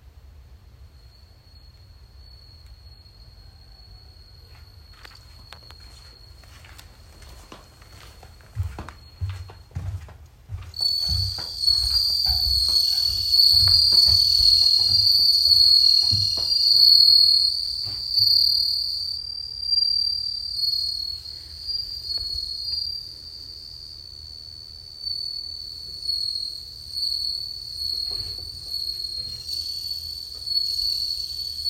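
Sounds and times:
bell cricket chirping in a high continuous trill: 0.7s - 9.7s, 10.6s - 31.6s.

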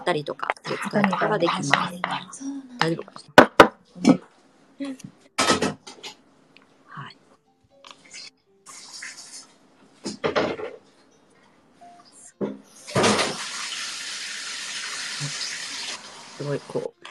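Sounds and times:
speech: 0.1s - 3.4s, 4.0s - 5.8s, 16.4s - 16.9s
sink sounds: 8.0s - 10.2s, 12.8s - 17.0s
water running from a tap: 8.7s - 9.5s, 12.8s - 16.9s.

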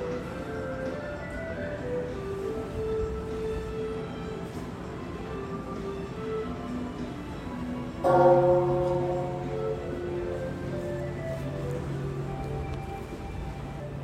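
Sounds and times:
steady noise: 0.0s - 14.0s
single bell strike ringing: 8.0s - 11.0s.

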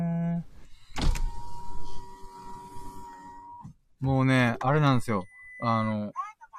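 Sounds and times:
steady mechanical whir: 0.6s - 3.7s
window sliding shut with a sharp clunk on a day of very bad weather: 0.9s - 3.0s
speech: 4.0s - 6.2s.

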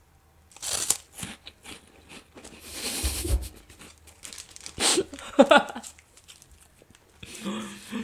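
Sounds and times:
biting and crunching a mentaiko-flavoured snack: 0.5s - 2.9s, 3.6s - 7.5s
rustling: 2.4s - 7.2s.

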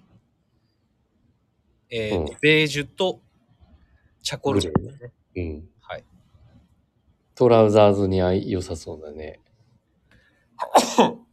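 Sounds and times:
speech: 1.9s - 3.2s, 4.2s - 6.1s, 7.4s - 9.4s, 10.6s - 11.2s
sneeze: 10.6s - 11.3s.

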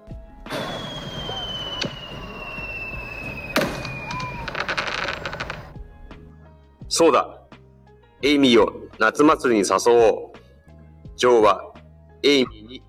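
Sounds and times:
firework booms in the sky: 0.0s - 4.5s
firework whistling streak in the sky: 0.0s - 5.8s
speech: 7.0s - 7.4s, 8.2s - 10.3s, 11.2s - 12.8s.

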